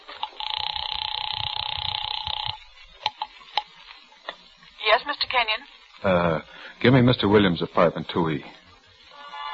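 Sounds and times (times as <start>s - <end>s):
sharp clicks: 0.1s - 4.4s
house telephone dial tone: 0.2s - 2.6s
speech: 5.2s - 8.6s.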